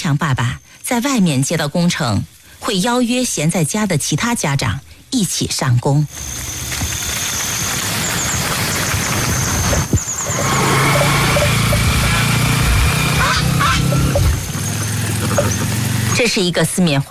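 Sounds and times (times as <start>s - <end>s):
speech: 0.1s - 6.8s, 16.2s - 17.0s
motorcycle engine running: 6.2s - 17.0s.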